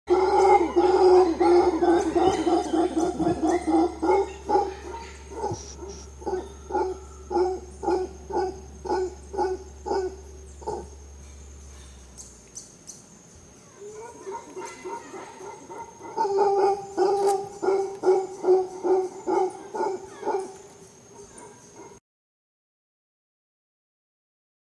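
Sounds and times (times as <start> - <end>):
howler monkey call: 0.1 - 22.0.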